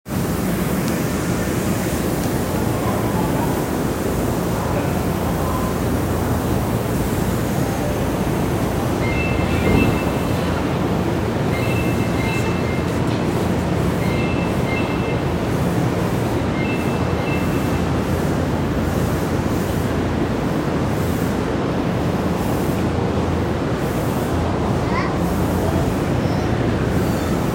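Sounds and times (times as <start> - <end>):
train approaching Sagami-Ono station west: 0.1 - 27.5.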